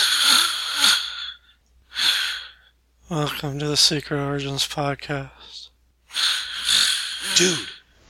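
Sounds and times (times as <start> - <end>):
sleeping person snoring raspily: 0.0 - 3.4, 6.1 - 7.8
speech: 3.1 - 5.6, 7.4 - 7.8.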